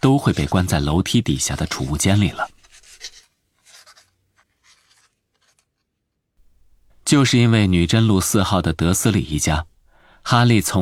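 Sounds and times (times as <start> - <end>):
speech: 0.0 - 2.6, 7.1 - 10.8
quill pen scratching while writing on paper: 0.0 - 7.1.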